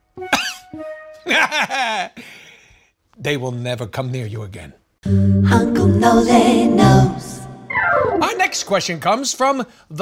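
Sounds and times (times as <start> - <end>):
speech: 0.2 - 2.3, 3.2 - 7.4, 8.4 - 9.9
person theatrically faking a coughing fit: 0.3 - 0.6
laughter: 1.2 - 2.2.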